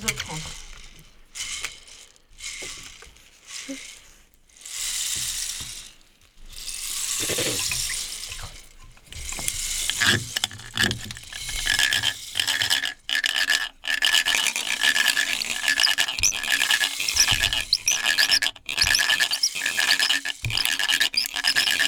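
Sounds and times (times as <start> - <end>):
speech: 0.0 - 0.6
clicking ratchet-like sounds: 9.3 - 21.8
flowing water: 10.8 - 21.8.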